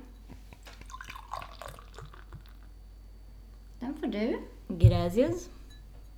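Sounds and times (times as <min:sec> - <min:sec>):
beer pouring into a glass with thick foam: 0:00.4 - 0:02.8
speech: 0:03.8 - 0:05.6.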